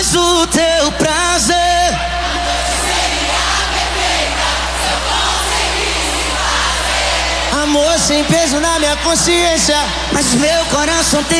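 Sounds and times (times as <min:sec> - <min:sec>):
large crowd shouting and cheering in Brasília: 0:00.0 - 0:11.3
speech: 0:00.1 - 0:01.5, 0:07.8 - 0:11.3
steady low hum: 0:02.0 - 0:10.2.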